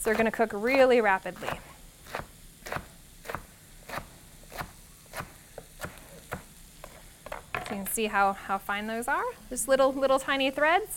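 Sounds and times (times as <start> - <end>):
speech: 0.0 - 2.3, 7.8 - 10.9
quiet hiss: 0.0 - 10.9
knife cutting vegetables into fine slivers on a cutting board: 1.4 - 7.5.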